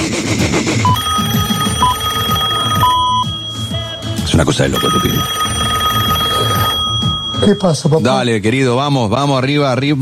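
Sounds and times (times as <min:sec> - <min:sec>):
ringback tones from a phone call being placed: 0:00.8 - 0:08.7
speech: 0:04.4 - 0:05.5, 0:07.4 - 0:10.0.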